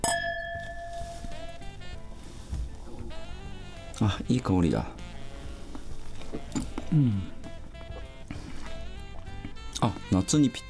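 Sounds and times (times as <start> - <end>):
wine glasses of chilled white wine clinking in a toast: 0.0 - 1.9
speech: 4.0 - 5.0, 6.9 - 7.4, 9.8 - 10.6.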